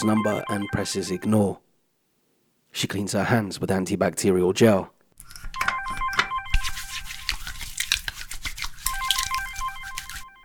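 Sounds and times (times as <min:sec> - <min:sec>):
mobile phone ringing with incoming call in an office: 0:00.0 - 0:01.4, 0:05.6 - 0:06.9, 0:08.9 - 0:10.4
speech: 0:00.0 - 0:01.6, 0:02.8 - 0:05.4.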